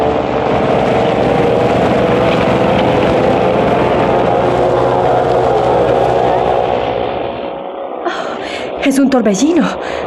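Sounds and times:
churning water from a large motorboat: 0:00.0 - 0:07.6
large motorboat roaring past at speed: 0:00.0 - 0:10.0
speech: 0:08.9 - 0:10.0.

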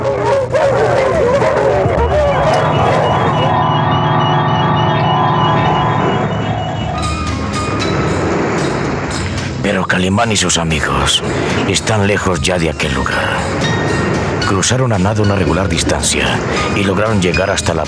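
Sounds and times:
dogs barking and yipping: 0:00.0 - 0:03.5
rumbling noise: 0:00.0 - 0:17.8
speech: 0:10.0 - 0:13.8, 0:14.5 - 0:17.8.

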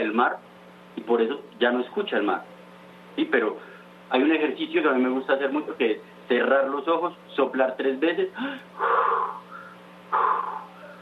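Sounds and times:
steady low hum: 0:00.0 - 0:11.0
speech: 0:00.1 - 0:02.5, 0:03.2 - 0:09.4
crows cawing outdoors: 0:08.8 - 0:11.0.

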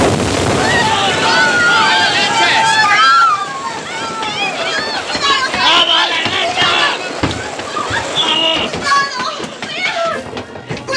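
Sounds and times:
steady wind: 0:00.0 - 0:10.9
water noise: 0:00.0 - 0:10.9
many voices of a ship's crew shouting over one another: 0:00.6 - 0:07.2.

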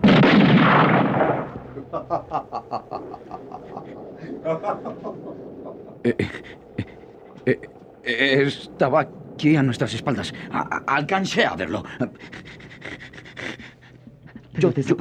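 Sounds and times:
gunfire volley aimed at a hut: 0:00.0 - 0:01.8
sharp separate gunshots cracking: 0:00.0 - 0:01.9
laughter: 0:01.8 - 0:07.6, 0:11.6 - 0:14.8
speech: 0:06.0 - 0:06.7, 0:07.4 - 0:13.5, 0:14.6 - 0:14.9.

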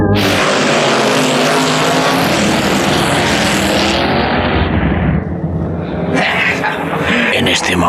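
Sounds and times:
motor scooter engine racing at full throttle across villa gardens in Cairo: 0:00.1 - 0:06.3
laughter: 0:06.1 - 0:07.8.

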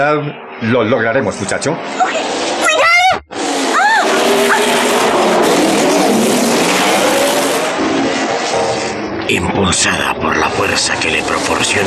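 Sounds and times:
speech: 0:00.0 - 0:02.4, 0:09.3 - 0:11.8
motorcycle engine roaring and revving while speeding toward a ramp: 0:03.2 - 0:09.2.

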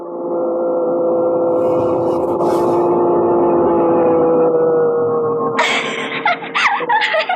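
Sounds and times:
racing car engine at full throttle during a race: 0:00.2 - 0:05.6
laughter: 0:05.6 - 0:07.3.

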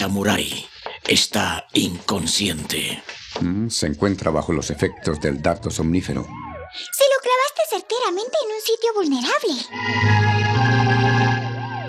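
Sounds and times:
speech: 0:00.0 - 0:07.0, 0:07.7 - 0:10.7
police siren wailing: 0:04.7 - 0:06.8, 0:09.8 - 0:11.8.

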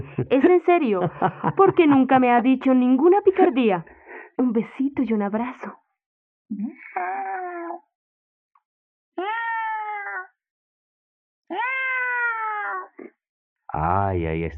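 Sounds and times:
laughter: 0:00.0 - 0:03.8
speech: 0:00.1 - 0:05.8, 0:06.5 - 0:07.3, 0:13.7 - 0:14.5
female cat meowing with a plaintive wailing tone: 0:09.2 - 0:10.3, 0:11.5 - 0:12.9.

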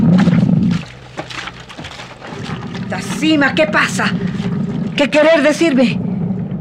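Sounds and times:
tiger roaring threateningly: 0:00.0 - 0:05.1
tiger's quieter rumbling growl: 0:00.0 - 0:06.3
speech: 0:02.9 - 0:04.4, 0:05.0 - 0:06.0.

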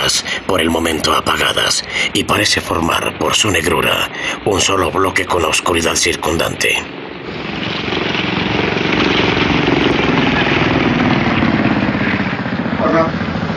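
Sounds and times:
speech: 0:00.1 - 0:07.0
motor launch engine droning beside a ship's boarding ladder at night: 0:07.0 - 0:13.5.

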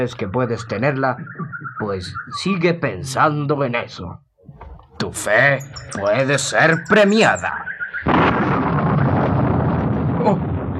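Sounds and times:
speech: 0:00.0 - 0:04.2, 0:05.1 - 0:08.5
rumbling thunder: 0:08.0 - 0:10.7.

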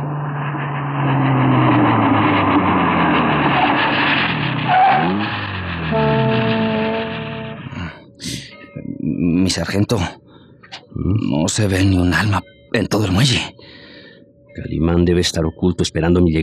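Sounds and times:
car tires squealing while braking hard and skidding: 0:00.0 - 0:07.9
car engine running and idling: 0:00.0 - 0:08.5
speech: 0:09.6 - 0:10.2, 0:11.1 - 0:13.7, 0:14.6 - 0:16.4.

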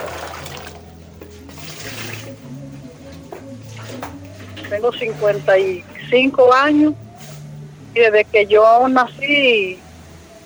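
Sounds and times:
running and sloshing water as corozo palm fruits are washed in basins: 0:00.0 - 0:07.5
low hum: 0:00.0 - 0:10.4
speech: 0:04.7 - 0:07.0, 0:07.9 - 0:09.8.

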